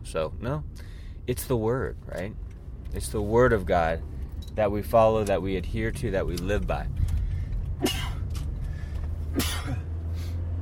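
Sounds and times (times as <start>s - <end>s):
steady low hum: 0.0s - 10.6s
speech: 0.1s - 7.1s, 7.8s - 8.1s
quieter huffs of breath: 0.8s - 1.2s, 6.9s - 9.4s
person sneezing: 7.8s - 8.2s, 9.3s - 9.9s.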